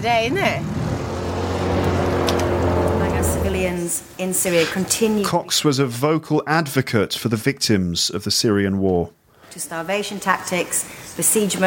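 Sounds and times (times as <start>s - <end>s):
speech: 0.0s - 0.8s, 3.6s - 11.6s
small RIB speedboat engine droning: 0.0s - 4.6s
rushing water: 0.6s - 5.7s.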